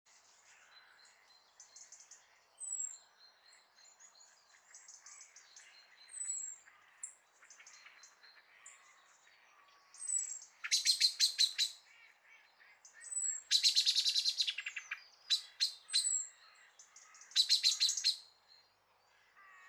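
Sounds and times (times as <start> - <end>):
common blackbird Turdus merula clicking and chirping calls: 0.4 - 18.3, 19.1 - 19.6.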